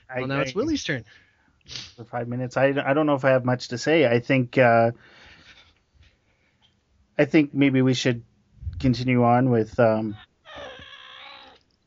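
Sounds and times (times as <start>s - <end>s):
speech: 0.1s - 5.2s, 7.2s - 10.3s
pet cat meowing while being petted: 10.2s - 11.6s.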